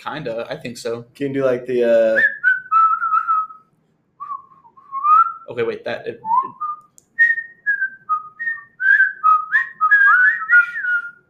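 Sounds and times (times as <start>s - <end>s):
speech: 0.0s - 2.4s, 5.5s - 6.6s
person whistling a wavering melody: 2.1s - 5.5s, 6.2s - 11.2s.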